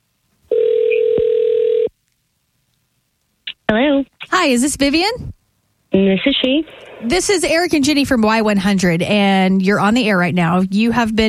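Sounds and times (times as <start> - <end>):
telephone ring-back tone as a call is placed: 0.5 - 1.9
speech: 4.4 - 5.3, 6.0 - 11.2.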